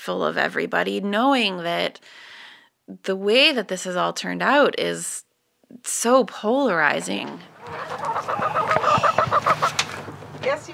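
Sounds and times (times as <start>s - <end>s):
speech: 0.0s - 9.8s
chickens clucking while being fed: 6.8s - 10.7s.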